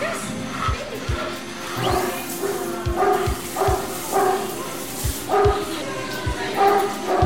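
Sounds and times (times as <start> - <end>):
busy noisy background: 0.0 - 7.2
dog barking: 1.8 - 4.6, 5.2 - 5.7, 6.6 - 7.2.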